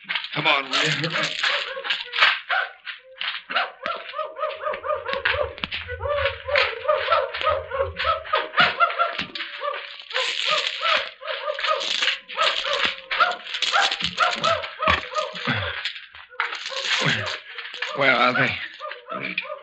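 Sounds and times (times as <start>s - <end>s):
pack of dogs barking and yelping in pursuit: 0.2s - 19.6s
speech: 0.4s - 1.7s
laughter: 0.6s - 2.3s, 4.5s - 10.8s, 14.3s - 15.9s, 16.8s - 19.4s
low rumble: 4.8s - 8.9s.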